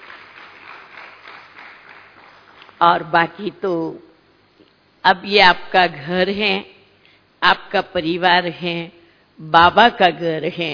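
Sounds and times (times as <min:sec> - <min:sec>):
audience applause: 0:00.0 - 0:02.8
speech: 0:02.8 - 0:04.1, 0:05.0 - 0:06.7, 0:07.4 - 0:10.7.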